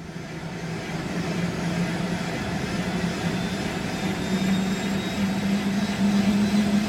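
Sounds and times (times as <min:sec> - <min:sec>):
helicopter engine drone inside cabin: 0:00.0 - 0:06.8.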